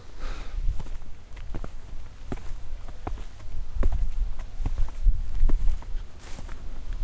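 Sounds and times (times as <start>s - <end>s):
footsteps of people walking up onto a dike: 0.6s - 7.0s.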